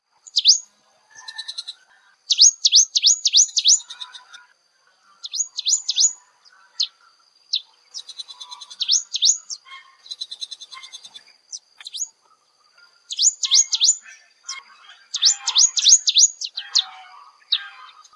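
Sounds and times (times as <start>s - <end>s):
Rufescent Prinia calls in Ipoh Perak Malaysia: 0.2s - 18.1s.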